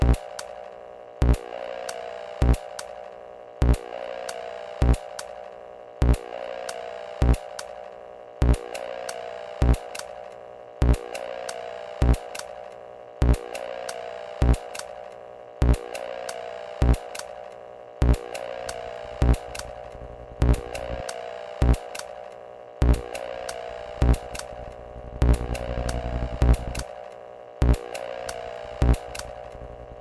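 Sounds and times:
empty cassette player running with no tape: 0.0s - 30.0s
sharp clicks: 8.7s - 10.4s, 11.0s - 12.8s, 13.4s - 15.2s, 15.8s - 17.6s, 18.2s - 30.0s.

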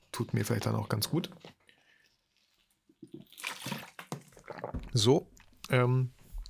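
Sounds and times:
sipping: 0.1s - 6.4s
speech: 0.2s - 1.6s, 4.9s - 6.2s
water pouring into a glass: 3.0s - 5.1s.

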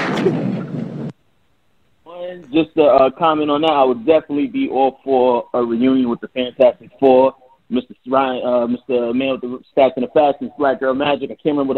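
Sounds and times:
gunshot sound effect: 0.0s - 1.1s
speech: 0.2s - 0.4s, 2.4s - 11.7s.

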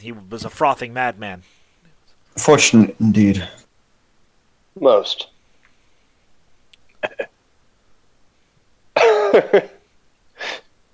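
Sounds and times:
speech: 0.0s - 1.6s, 2.4s - 3.7s, 4.8s - 5.3s, 9.3s - 9.8s
person coughing with throat-clearing: 9.0s - 9.8s.

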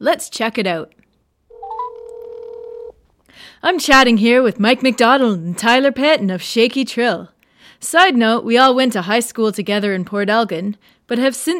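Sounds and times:
speech: 0.0s - 1.0s, 3.4s - 11.5s
telephone dialing electronic key tones: 1.5s - 2.9s.

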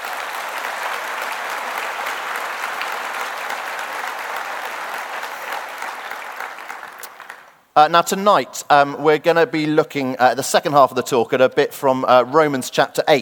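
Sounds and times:
room full of people clapping: 0.0s - 7.7s
speech: 7.8s - 13.1s.

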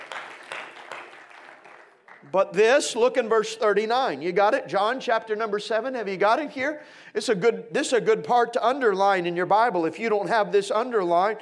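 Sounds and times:
audience clapping hands: 0.0s - 2.4s
speech: 2.2s - 11.4s.

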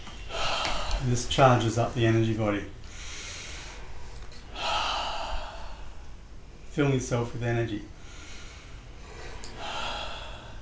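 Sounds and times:
deep breaths during a guided energy-body exercise: 0.0s - 1.3s, 2.8s - 6.7s, 7.9s - 10.6s
speech: 1.0s - 2.8s, 6.8s - 8.0s.

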